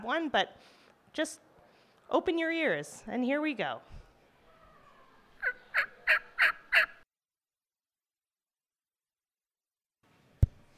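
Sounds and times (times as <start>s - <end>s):
speech: 0.0s - 1.5s, 2.1s - 4.0s
wild turkeys gobbling: 5.4s - 7.0s.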